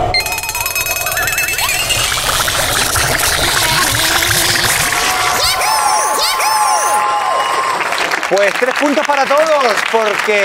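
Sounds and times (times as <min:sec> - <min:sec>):
bell-like chimes sweeping up and down: 0:00.2 - 0:03.5
crowd applause and cheering: 0:00.2 - 0:10.4
speech: 0:08.3 - 0:10.4.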